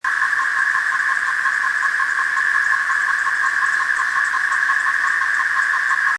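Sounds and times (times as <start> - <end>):
thirteen-year periodical cicada droning buzz: 0.0 - 6.1.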